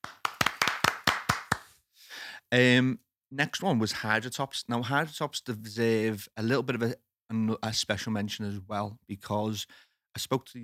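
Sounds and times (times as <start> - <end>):
crisp hand claps: 0.0 - 1.8
speech: 2.5 - 10.6.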